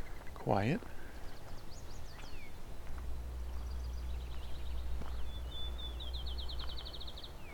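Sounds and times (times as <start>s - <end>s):
speech: 0.4s - 1.0s
bird chirps: 1.0s - 2.6s, 3.5s - 7.5s
field sparrow singing softly at a distance: 1.0s - 2.6s, 3.5s - 7.5s.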